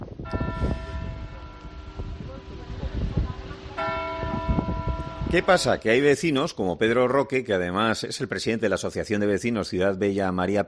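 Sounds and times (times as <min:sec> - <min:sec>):
street noise: 0:00.0 - 0:10.6
church bell striking the hour: 0:00.2 - 0:06.3
speech: 0:05.3 - 0:10.6.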